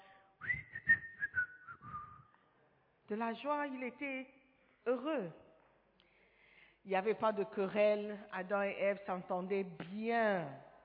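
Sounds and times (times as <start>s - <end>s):
person whistling a short cheerful melody: 0.4s - 2.3s
speech: 3.1s - 5.4s, 6.8s - 10.7s.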